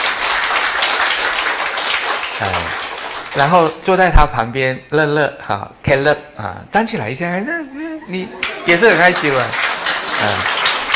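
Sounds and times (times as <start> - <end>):
audience at a Sunday church service applauding: 0.0 - 3.8, 8.4 - 10.9
speech: 3.4 - 10.6
laughter: 7.6 - 10.9.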